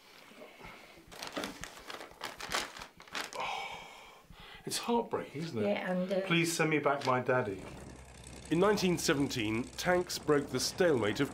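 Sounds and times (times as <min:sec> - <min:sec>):
old paper card crinkling and rustling while handled: 0:01.1 - 0:03.4, 0:06.9 - 0:07.3
speech: 0:04.7 - 0:07.8, 0:08.5 - 0:11.3.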